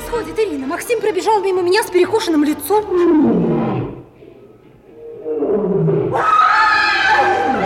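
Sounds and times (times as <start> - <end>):
speech: 0.1 - 3.5
caged lion roaring: 3.0 - 7.5.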